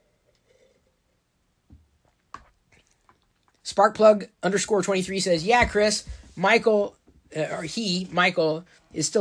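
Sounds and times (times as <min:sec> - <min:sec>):
person sipping green tea: 0:00.0 - 0:01.3, 0:02.0 - 0:03.6
soft slurping and wet mouth sounds: 0:00.0 - 0:01.3, 0:02.0 - 0:03.6
speech: 0:03.8 - 0:09.1.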